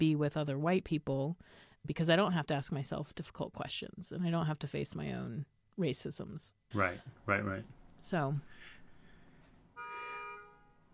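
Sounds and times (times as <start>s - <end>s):
speech: 0.0s - 8.8s
car horn honking on a New York street: 9.8s - 10.9s.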